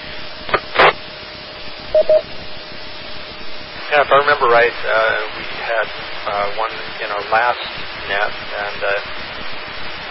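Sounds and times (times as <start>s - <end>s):
radio static hiss: 0.0s - 10.0s
short bursts of radio noise: 1.9s - 2.4s
speech: 1.9s - 2.4s, 3.9s - 10.0s
DTMF keypad tones from a radio microphone keypad: 2.0s - 2.2s.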